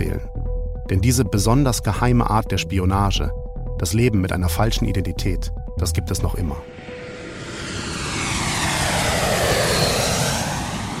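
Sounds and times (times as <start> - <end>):
speech: 0.9 - 6.9
fixed-wing airplane engine roar arriving in Amsterdam: 6.6 - 10.9.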